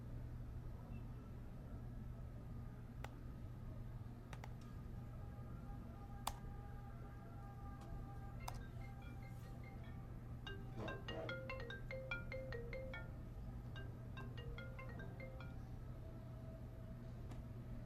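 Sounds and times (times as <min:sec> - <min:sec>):
steady low hum: 0:00.0 - 0:17.8
mobile phone ringing with a melodic electronic ringtone: 0:08.4 - 0:15.8.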